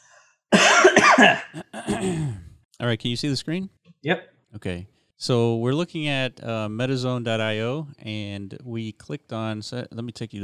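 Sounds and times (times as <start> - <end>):
phlegmy coughing: 0.5 - 2.6
throat clearing: 0.6 - 2.6
speech: 1.2 - 10.4.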